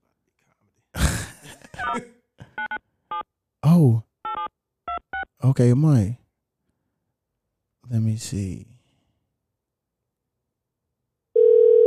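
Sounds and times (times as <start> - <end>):
speech: 1.9 - 2.2, 5.4 - 6.2, 7.9 - 8.7
electronic dialing beeps of a phone making a call: 4.3 - 5.3, 11.4 - 11.8.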